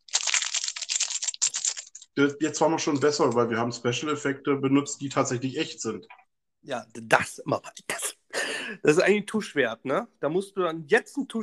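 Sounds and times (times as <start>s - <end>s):
paper wrapper of a small ice-ball sweet crinkling: 0.0s - 2.2s
speech: 2.2s - 8.1s, 8.7s - 11.4s.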